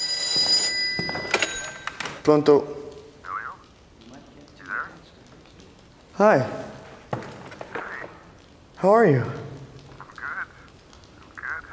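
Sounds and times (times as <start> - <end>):
telephone bell ringing: 0.0 - 2.3
speech: 2.3 - 2.8, 6.2 - 6.6, 8.8 - 9.4.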